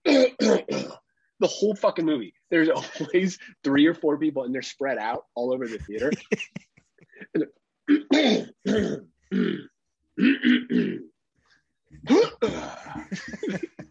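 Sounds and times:
voice imitating a man clearing his throat: 0.0 - 1.8, 2.6 - 3.6, 7.2 - 11.1, 12.0 - 13.8
speech: 1.4 - 11.1, 12.0 - 13.8
laughter: 2.6 - 3.6, 5.6 - 6.6, 12.7 - 13.8.

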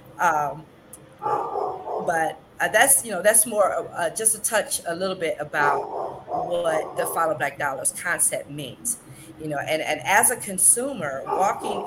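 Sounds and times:
speech: 0.2 - 11.8
dogs barking: 1.2 - 2.2, 5.6 - 7.4, 11.2 - 11.8.

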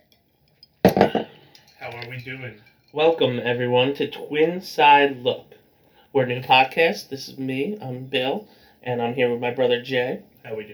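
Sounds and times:
glasses clinking together in a toast: 0.0 - 5.6
speech: 2.0 - 10.7.

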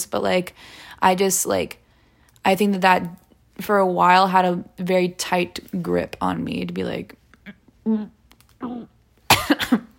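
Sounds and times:
speech: 0.0 - 1.8, 2.4 - 7.2, 7.9 - 9.8
person coughing deliberately: 8.6 - 9.9.

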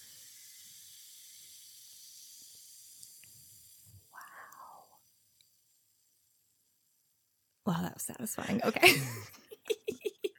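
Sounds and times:
carbonated soda fizzing poured over ice: 0.0 - 7.4
tiny crackles and pops of carbonated soda: 0.0 - 7.6
speech: 7.7 - 9.4
laughter: 8.5 - 10.3.

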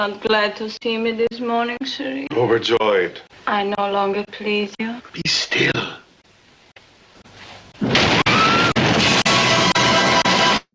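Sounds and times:
speech: 0.0 - 6.0
movie explosion: 7.8 - 10.4.

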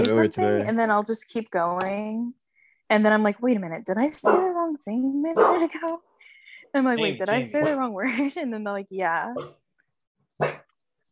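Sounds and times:
speech: 0.2 - 6.1, 6.7 - 9.6
dog barking: 4.2 - 4.5, 5.4 - 5.6, 10.4 - 10.6.

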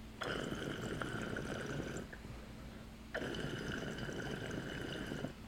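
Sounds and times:
water bubbling and gurgling through a glass recycler pipe: 0.2 - 2.2, 3.1 - 5.3.

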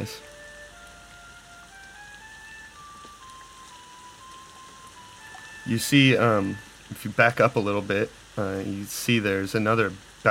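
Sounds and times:
speech: 0.0 - 0.3, 5.7 - 10.2
thin tinkling melody of single notes: 0.0 - 6.7
steady rain hissing: 0.0 - 10.2.

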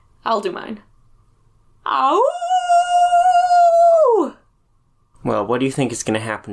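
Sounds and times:
speech: 0.3 - 0.9, 1.9 - 2.5, 5.2 - 6.5
person imitating a wolf howl: 1.9 - 4.4.

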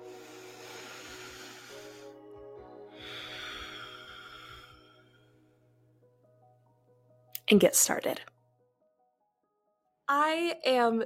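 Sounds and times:
person taking a deep breath: 0.0 - 2.2, 2.9 - 5.4
speech: 7.5 - 8.3, 10.1 - 11.0.

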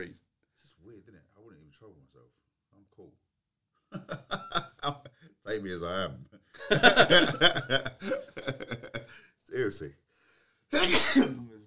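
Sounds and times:
speech: 0.0 - 0.2, 0.8 - 3.2, 3.9 - 10.0, 10.7 - 11.6
laughter: 4.0 - 5.1, 6.6 - 9.2
person sneezing: 7.0 - 9.0, 10.8 - 11.4.

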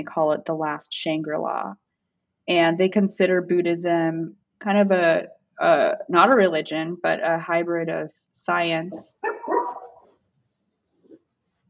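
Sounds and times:
speech: 0.0 - 1.8, 2.5 - 9.3
poodle barking and yipping: 9.1 - 10.2.

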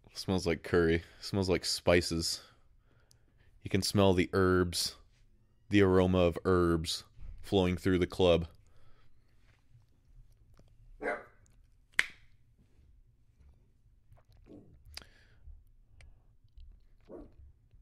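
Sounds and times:
low steady hum: 0.0 - 17.8
speech: 0.2 - 2.5, 3.6 - 5.0, 5.7 - 8.6
dog barking: 11.0 - 11.4, 17.1 - 17.4.

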